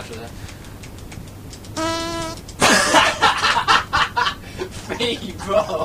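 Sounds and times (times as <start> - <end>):
feeble squeaky fart: 1.8 - 2.4
laughter: 2.6 - 5.8.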